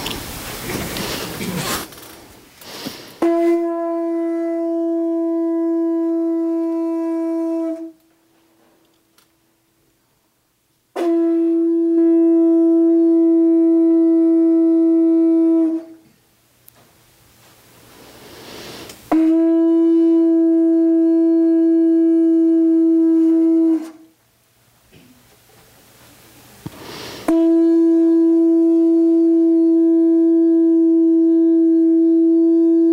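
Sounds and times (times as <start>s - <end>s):
conch shell blown to open a morning chant and meditation: 3.2s - 8.0s, 10.9s - 16.0s, 19.1s - 24.1s, 27.2s - 32.9s.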